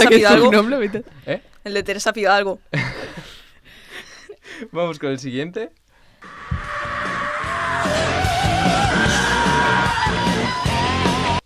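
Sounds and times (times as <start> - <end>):
speech: 0.0 - 3.3, 4.5 - 6.5
harsh screamed vocals: 6.2 - 11.4
heavy distorted guitars: 6.2 - 11.4.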